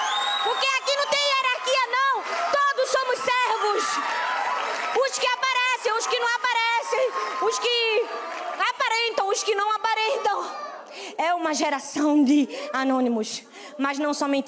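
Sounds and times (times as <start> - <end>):
audience applause for people honored as heroes: 0.0 - 10.4
audience cheering with high whooping shouts: 0.0 - 10.9
speech: 11.4 - 14.4.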